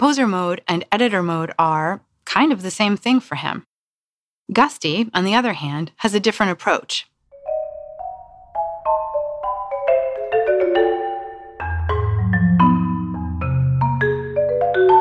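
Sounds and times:
speech: 0.0s - 3.7s, 4.5s - 7.1s
solo marimba piece played by a percussionist: 7.4s - 14.9s.

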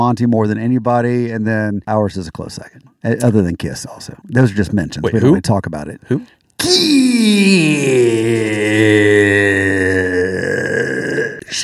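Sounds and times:
speech: 0.0s - 9.8s
long loud burp: 6.6s - 11.4s.

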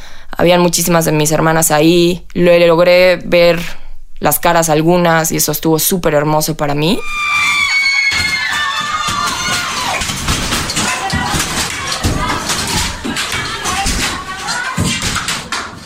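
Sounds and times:
speech: 0.4s - 7.6s
group of women shouting and screaming angrily at a protest: 7.0s - 14.8s
thuds: 7.4s - 15.8s.

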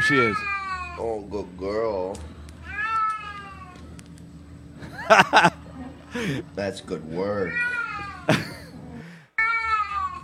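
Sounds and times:
cat meowing during physical therapy exercise: 0.0s - 1.0s, 2.6s - 3.8s, 7.4s - 8.3s, 9.4s - 10.2s
speech: 0.1s - 2.4s, 5.1s - 8.5s
laughter: 4.8s - 6.5s, 8.3s - 8.8s.

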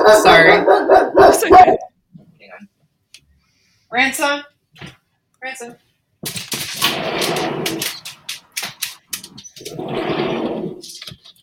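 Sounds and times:
speech: 0.1s - 1.9s, 3.9s - 8.0s
dog making clicks and scuffles: 6.2s - 9.8s.

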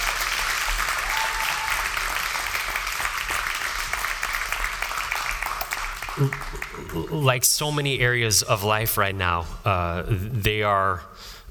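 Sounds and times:
large crowd applauding a worship team: 0.0s - 7.4s
speech: 6.2s - 11.5s.

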